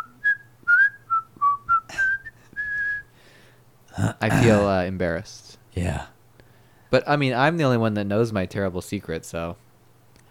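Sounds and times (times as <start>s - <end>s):
person whistling a short bright tune: 0.0s - 3.1s
speech: 4.0s - 6.2s, 6.9s - 9.6s.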